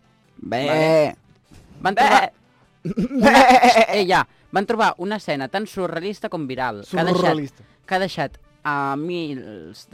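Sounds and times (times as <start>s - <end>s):
speech: 0.4s - 1.2s, 1.8s - 9.9s
goat bleating: 0.5s - 1.2s, 1.9s - 2.3s, 3.0s - 4.1s, 6.9s - 7.5s.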